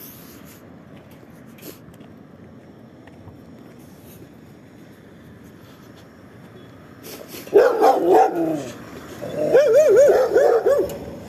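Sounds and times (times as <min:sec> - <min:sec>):
several dogs barking and yelping: 0:07.4 - 0:11.2.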